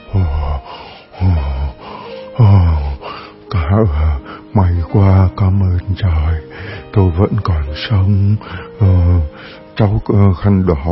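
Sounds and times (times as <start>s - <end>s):
heavy ragged gasping for breath: 0.0s - 4.5s, 6.5s - 6.9s, 8.4s - 9.8s
speech: 3.7s - 4.0s, 4.6s - 10.9s.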